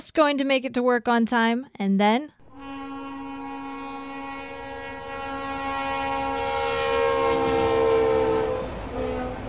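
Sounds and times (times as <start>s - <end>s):
speech: 0.0s - 2.4s
train horn blaring: 2.4s - 9.4s.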